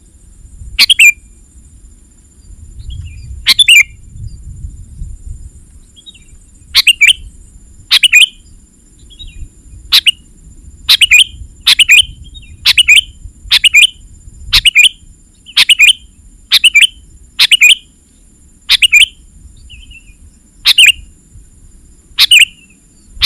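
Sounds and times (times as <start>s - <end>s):
sooty-headed bulbul giving squeaky chirping phrases: 0.8s - 1.2s, 3.5s - 3.9s, 6.8s - 7.3s, 7.9s - 8.4s, 9.9s - 10.2s, 10.9s - 12.1s, 12.7s - 14.0s, 14.6s - 17.9s, 18.7s - 20.0s, 20.7s - 21.1s, 22.2s - 23.2s.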